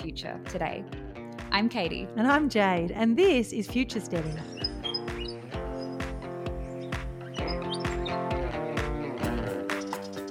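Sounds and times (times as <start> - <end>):
speech: 0.0 - 4.6
musical backing with sustained tones and a regular plucked beat: 0.0 - 10.2
bright short bird chirps: 4.0 - 10.2.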